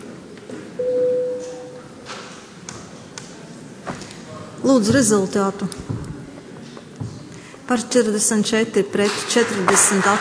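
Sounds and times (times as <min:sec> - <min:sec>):
bell or electronic signal marking a vote in a parliament chamber: 0:00.8 - 0:01.8
speech: 0:04.6 - 0:05.9, 0:07.7 - 0:10.1.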